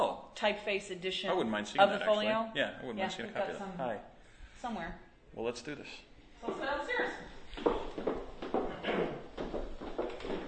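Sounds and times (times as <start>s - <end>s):
speech: 0.4s - 7.8s
uneven footsteps climbing stairs: 6.4s - 10.4s.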